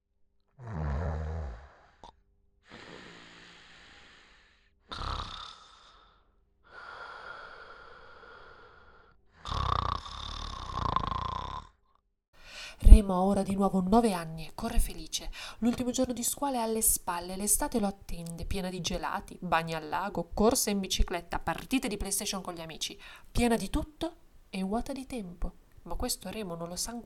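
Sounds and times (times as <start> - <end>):
exhausted man breathing heavily asleep on a bench near a lake: 0.6 - 11.0, 12.4 - 12.8
speech: 13.0 - 27.0.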